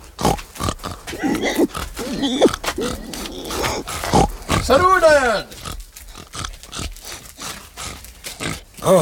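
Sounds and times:
pigs nearly the size of wild boar raised for ham grunting: 0:00.0 - 0:08.9
speech: 0:02.2 - 0:05.6.

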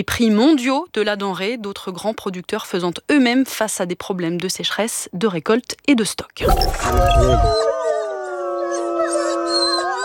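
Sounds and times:
speech: 0:00.0 - 0:08.0
low rumbling noise: 0:06.4 - 0:07.6
wolves howling in a chorus: 0:07.5 - 0:10.0.

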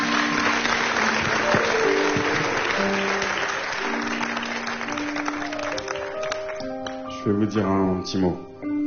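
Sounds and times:
sustained applause from a sizeable audience: 0:00.0 - 0:07.0
faint tonal hum or music: 0:07.0 - 0:08.8
speech: 0:07.2 - 0:08.6.

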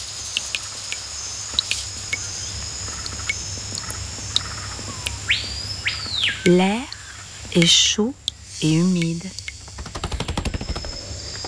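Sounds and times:
steady high drone of jungle insects: 0:00.0 - 0:11.4
jungle birds chirping and tweeting: 0:01.3 - 0:11.4
speech: 0:06.5 - 0:06.9, 0:07.6 - 0:09.4.

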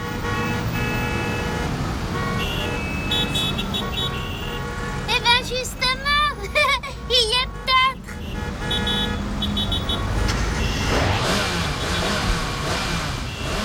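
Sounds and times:
busy street traffic rumbling: 0:00.0 - 0:13.6
car horns in street traffic: 0:00.0 - 0:13.6
car engine roaring and revving: 0:08.6 - 0:13.6.

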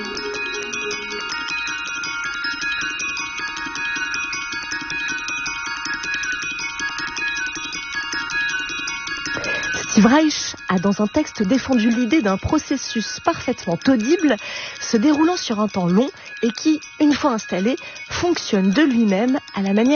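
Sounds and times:
high piccolo playing: 0:00.0 - 0:01.8
three glockenspiels playing interlocking repeated patterns: 0:00.0 - 0:19.9
speech: 0:10.0 - 0:19.9.

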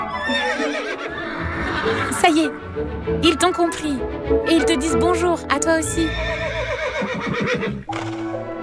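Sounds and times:
horse neighing: 0:00.2 - 0:02.5, 0:05.9 - 0:08.5
speech: 0:00.3 - 0:06.5, 0:07.5 - 0:08.2.

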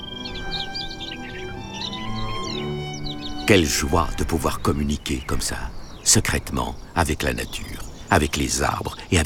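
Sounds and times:
steady sustained tone: 0:00.0 - 0:04.4
several birds singing in twittering and trilling phrases: 0:00.0 - 0:09.2
speech: 0:03.5 - 0:09.2.

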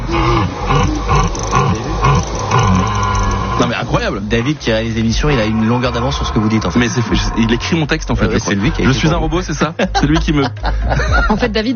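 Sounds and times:
rutting deer stag bellowing: 0:00.0 - 0:08.5
speech: 0:04.0 - 0:11.7
laughter: 0:08.0 - 0:11.6.

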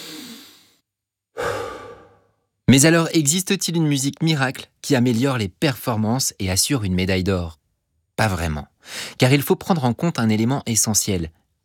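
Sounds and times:
heavy breathing while catching breath: 0:01.4 - 0:02.4
speech: 0:02.7 - 0:07.6, 0:08.2 - 0:11.6.

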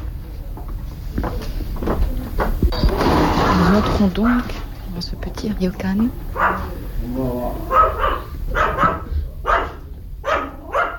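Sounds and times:
low noise: 0:00.0 - 0:10.9
speech: 0:03.8 - 0:08.2
dog barking in short paired bursts: 0:06.3 - 0:06.8, 0:07.6 - 0:10.9.

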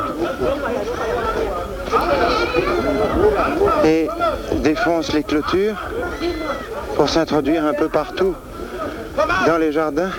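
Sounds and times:
faint chatter: 0:00.0 - 0:10.1
laughter: 0:00.0 - 0:10.1
young goats bleating: 0:01.8 - 0:04.6
speech: 0:03.8 - 0:06.4, 0:07.0 - 0:08.5, 0:09.2 - 0:10.1.

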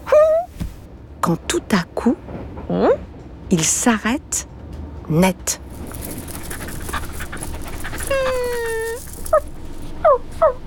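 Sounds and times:
small brown dog whining: 0:00.0 - 0:00.5, 0:06.3 - 0:10.6
speech: 0:01.3 - 0:04.5, 0:05.1 - 0:05.6
small brown dog panting: 0:05.8 - 0:09.4
small brown dog yelping: 0:06.2 - 0:10.6.

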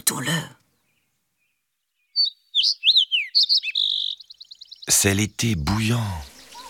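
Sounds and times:
speech: 0:00.1 - 0:00.6, 0:05.0 - 0:06.3
sparrow chirping and trilling: 0:00.8 - 0:05.1, 0:05.8 - 0:06.6.

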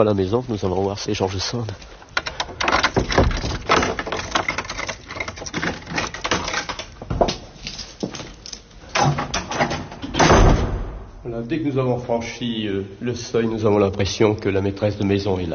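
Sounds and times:
speech: 0:00.0 - 0:01.9, 0:11.5 - 0:15.5
house door being opened with wooden clunks and rattles: 0:02.2 - 0:07.4, 0:08.9 - 0:11.1.

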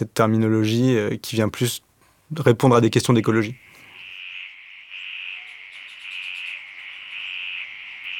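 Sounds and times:
speech: 0:00.0 - 0:03.7
chorus of frogs trilling around a pond after rain: 0:03.0 - 0:08.1.

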